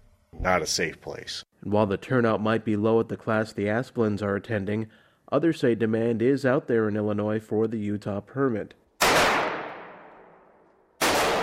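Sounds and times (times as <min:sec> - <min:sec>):
speech: 0:00.4 - 0:08.8
gunshots at a gun store's shooting range in East Dundee, Illinois: 0:09.0 - 0:10.2, 0:11.0 - 0:11.4.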